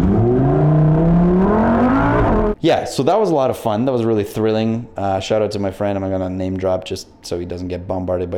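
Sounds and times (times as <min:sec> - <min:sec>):
Lamborghini sports car engine revving: 0:00.0 - 0:02.6
speech: 0:02.6 - 0:08.3.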